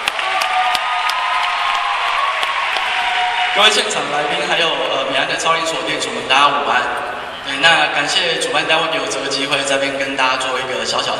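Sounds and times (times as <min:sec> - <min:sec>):
sharp individual claps: 0:00.0 - 0:03.0
live audience applause: 0:00.0 - 0:04.9
speech: 0:03.6 - 0:11.1.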